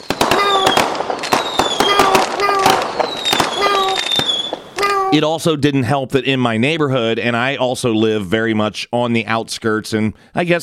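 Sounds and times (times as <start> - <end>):
fireworks crackling pops: 0.0 - 5.1
speech: 5.1 - 10.6.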